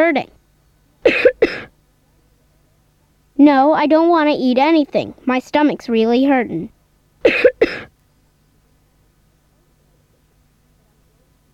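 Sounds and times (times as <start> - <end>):
speech: 0.1 - 0.4, 3.4 - 7.9
harsh coughs: 1.0 - 1.8, 7.2 - 8.0.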